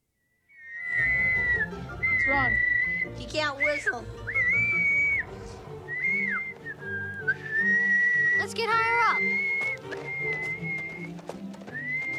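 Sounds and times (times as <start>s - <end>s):
person whistling in the grass: 0.6s - 12.1s
speech: 2.3s - 4.4s, 8.5s - 11.2s.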